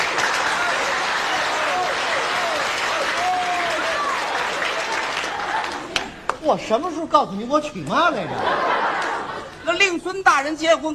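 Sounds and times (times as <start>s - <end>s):
audience applause at a comic stage performance: 0.0s - 6.4s
speech: 6.5s - 8.7s, 9.7s - 10.9s
laughter: 8.0s - 9.8s.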